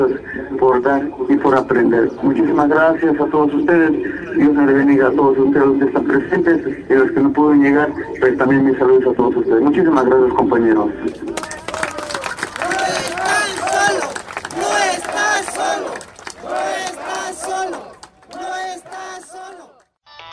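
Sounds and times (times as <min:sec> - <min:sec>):
speech: 0:00.0 - 0:11.4
crowd chanting and shouting in rhythmic bursts: 0:11.4 - 0:20.0.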